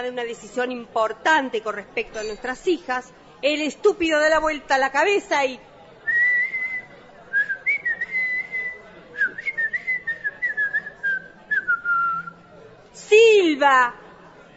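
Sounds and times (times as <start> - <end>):
speech: 0.0 - 5.7, 13.6 - 14.0
man whistling a wavering sustained tune: 6.1 - 12.4.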